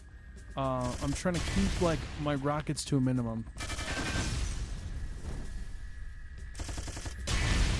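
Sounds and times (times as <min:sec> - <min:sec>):
speech: 0:00.6 - 0:03.6
machine gun firing in a video game: 0:00.8 - 0:01.9, 0:03.6 - 0:04.3, 0:06.6 - 0:07.6.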